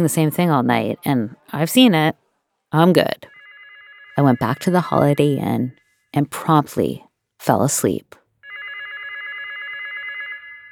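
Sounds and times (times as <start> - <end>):
speech: 0.0 - 3.3, 4.2 - 8.2
telephone ringing with a warbling electronic tone: 2.8 - 6.5, 8.4 - 10.7.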